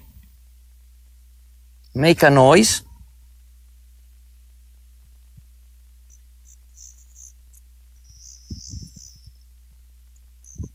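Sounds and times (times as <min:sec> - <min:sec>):
low hum: 0:00.0 - 0:10.7
speech: 0:02.0 - 0:02.8
crickets chirping at nightfall: 0:05.9 - 0:10.7
soft low thumps: 0:08.0 - 0:09.4, 0:10.5 - 0:10.7.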